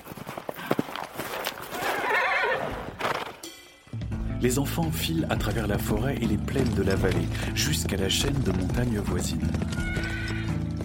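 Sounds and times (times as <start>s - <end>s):
galloping hooves: 0.0s - 3.4s, 5.4s - 10.8s
pony whinnying loudly: 1.8s - 3.0s, 9.6s - 10.8s
speech: 4.4s - 10.2s.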